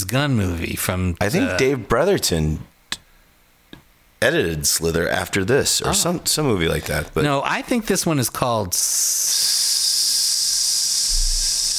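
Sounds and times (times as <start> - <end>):
speech: 0.0 - 2.7, 4.2 - 9.7
loud steady hiss: 8.7 - 11.7.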